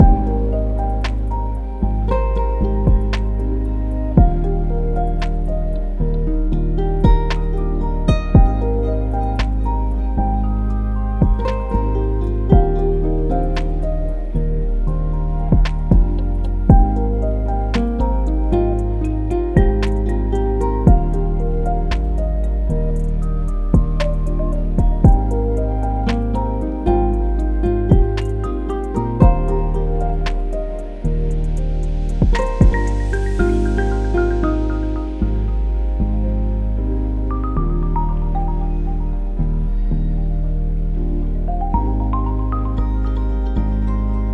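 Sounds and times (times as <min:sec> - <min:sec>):
lofi music loop: 0:00.0 - 0:44.2.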